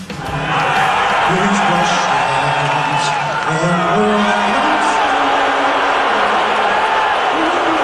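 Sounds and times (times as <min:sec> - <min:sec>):
loud dense crowd murmuring and calling out: 0:00.0 - 0:07.8
whoops: 0:00.4 - 0:07.8.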